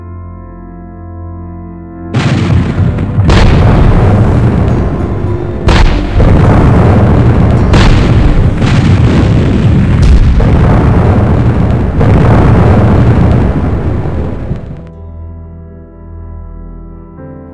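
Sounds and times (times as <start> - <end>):
heavy artillery bombardment explosions: 2.1 - 14.9
continuous rumbling roar: 3.3 - 14.8.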